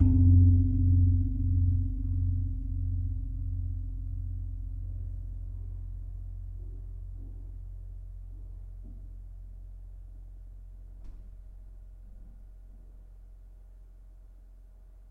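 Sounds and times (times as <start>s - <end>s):
Gong Ageng of a gamelan: 0.0s - 5.0s.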